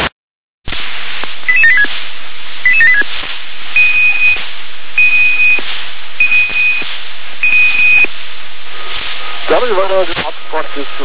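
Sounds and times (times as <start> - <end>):
longer steady telephone tones: 1.0 - 11.0
telephone keypad dialing beeps over a phone line: 1.5 - 1.9, 2.7 - 3.0, 3.8 - 4.4, 5.0 - 5.6, 6.2 - 6.8, 7.4 - 8.1
speech: 9.6 - 11.0.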